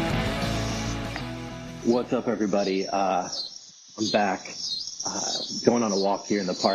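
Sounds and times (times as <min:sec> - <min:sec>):
cicadas buzzing in a park: 0:00.1 - 0:06.7
speech: 0:01.9 - 0:03.5, 0:04.0 - 0:06.7.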